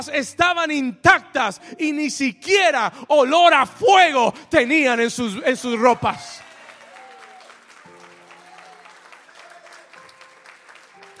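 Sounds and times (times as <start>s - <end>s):
speech: 0.0s - 6.4s
crowd applauding: 5.4s - 11.1s.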